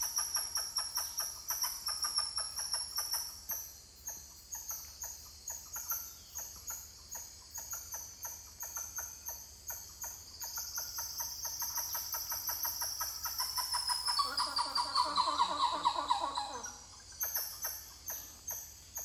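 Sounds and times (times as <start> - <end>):
high insect drone: 0.0 - 19.0
titi monkeys calling: 13.2 - 16.9.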